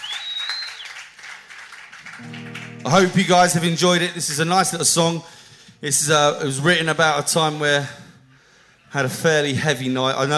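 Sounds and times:
audience applause after an original song at a live music gig: 0.0s - 3.3s
speech: 2.2s - 8.0s, 8.9s - 10.3s.

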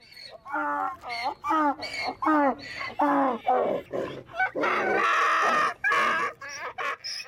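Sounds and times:
donkey braying at a fair: 0.0s - 7.2s.

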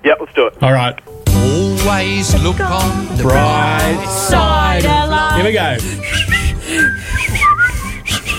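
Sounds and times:
speech: 0.6s - 7.2s
several people whistling a tune together in unison: 3.3s - 8.3s.

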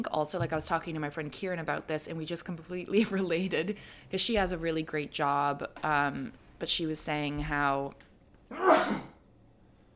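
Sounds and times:
speech: 0.0s - 9.0s
sharp sneeze: 8.5s - 9.2s.

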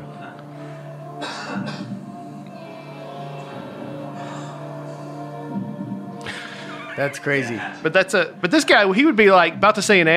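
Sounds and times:
audience member coughing: 1.2s - 1.9s
speech: 7.0s - 10.1s.

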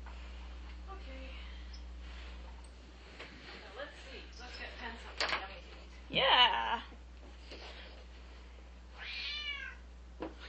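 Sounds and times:
low steady hum: 0.0s - 10.4s
cat meowing: 9.0s - 9.8s.

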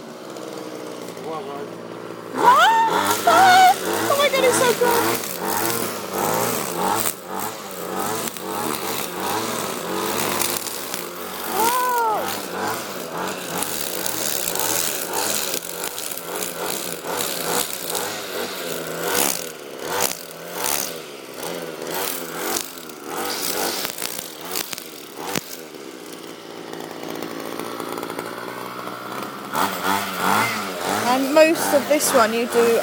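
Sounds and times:
handheld petrol grass trimmer two-stroke engine buzzing and revving: 0.0s - 32.8s
speech: 1.3s - 3.4s, 4.4s - 7.1s, 31.7s - 32.8s.

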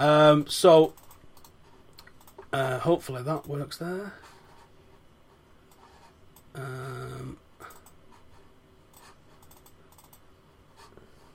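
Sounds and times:
speech: 0.0s - 1.0s, 2.5s - 4.3s, 6.6s - 7.4s
typing on a computer keyboard: 0.9s - 2.4s, 8.9s - 10.2s.

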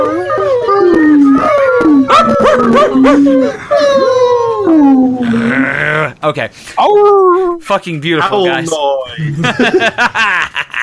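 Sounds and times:
several people imitating whining puppy moans: 0.0s - 6.2s, 6.8s - 7.6s
speech: 2.8s - 10.8s
laughter: 9.2s - 10.8s.

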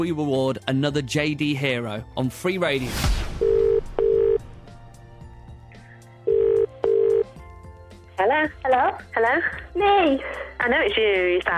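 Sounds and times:
speech: 0.0s - 3.2s, 8.2s - 11.5s
telephone line double-ring tones: 3.4s - 4.4s, 6.3s - 7.4s.

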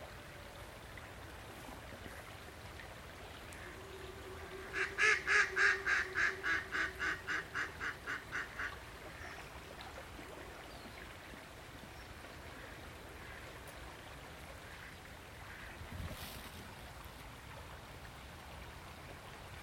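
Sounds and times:
low steady hum: 0.0s - 19.6s
river current flowing: 0.0s - 19.6s
duck quacking: 4.7s - 8.8s.

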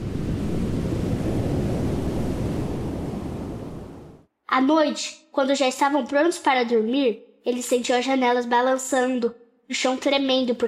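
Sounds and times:
large ocean wave breaking: 0.0s - 4.3s
speech: 4.5s - 10.6s.

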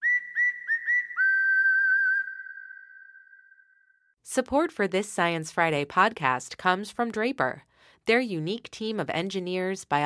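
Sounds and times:
bright clear whistle: 0.0s - 4.2s
speech: 4.3s - 10.0s.

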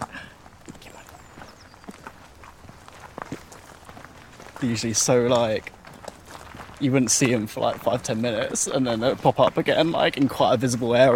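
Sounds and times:
footsteps walking outdoors: 0.0s - 11.1s
speech: 4.6s - 5.8s, 6.8s - 11.1s.

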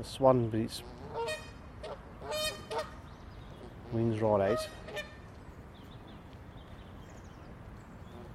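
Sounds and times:
speech: 0.0s - 1.4s, 3.9s - 4.9s
Canada geese honking at a farm park: 0.7s - 5.3s, 8.1s - 8.3s.

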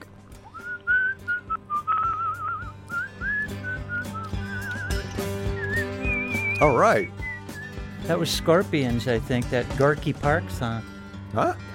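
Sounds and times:
soft musical backing: 0.0s - 11.7s
person whistling a tune: 0.4s - 8.0s
speech: 6.6s - 7.2s, 8.1s - 11.6s.

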